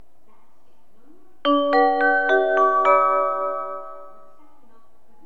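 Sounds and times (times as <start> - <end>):
station ambience in Uji Kyoto: 1.5 - 4.4.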